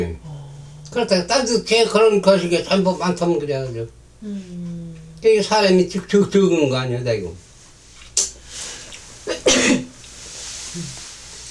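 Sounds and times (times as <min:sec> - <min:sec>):
speech: 0:00.9 - 0:07.5, 0:10.8 - 0:11.0
brief sneeze with a quick hiss-like intake: 0:09.3 - 0:09.9.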